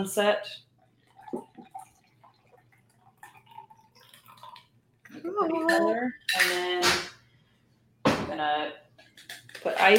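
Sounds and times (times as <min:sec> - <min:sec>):
speech: 0:00.0 - 0:00.7, 0:05.2 - 0:07.1, 0:08.3 - 0:08.8, 0:09.6 - 0:09.9
shaken cocktail pouring into a glass: 0:01.0 - 0:04.8.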